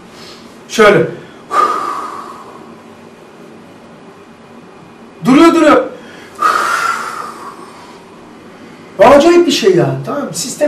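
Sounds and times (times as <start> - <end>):
speech: 0.7 - 1.2, 9.2 - 10.6
person imitating the labored gasp of someone dying: 1.4 - 2.7, 6.0 - 8.1.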